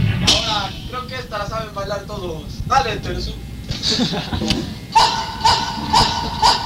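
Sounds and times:
speech: 1.2 - 5.2
laughter: 3.7 - 4.9, 5.7 - 6.6
dog barking: 5.0 - 6.6.

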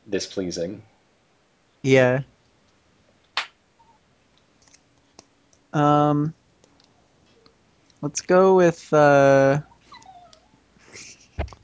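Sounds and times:
speech: 0.1 - 0.9, 1.8 - 2.3, 5.7 - 6.4, 8.0 - 9.7
dog whining: 9.6 - 10.6.

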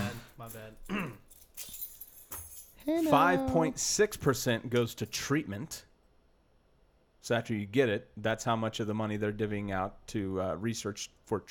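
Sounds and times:
keys jangling: 0.2 - 3.1
speech: 0.5 - 1.7, 2.8 - 5.9, 7.2 - 11.4
person talking loudly: 2.9 - 3.9.

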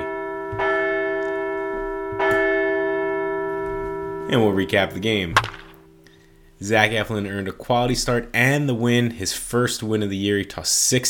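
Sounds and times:
large bell ringing: 0.0 - 6.4
speech: 4.3 - 5.6, 6.6 - 11.0.

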